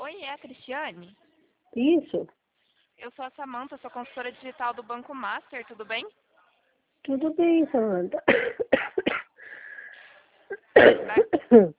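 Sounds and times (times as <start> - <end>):
speech: 0.3 - 2.4, 3.0 - 6.2, 7.0 - 8.8, 10.5 - 11.7
woman on a phone call coughing: 8.2 - 9.4, 10.5 - 11.7.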